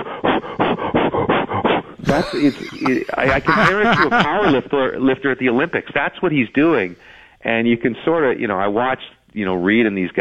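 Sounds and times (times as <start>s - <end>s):
person imitating a golfer's loud heavy breathing: 0.0s - 4.2s
laughter: 2.0s - 5.1s
speech: 2.2s - 10.1s.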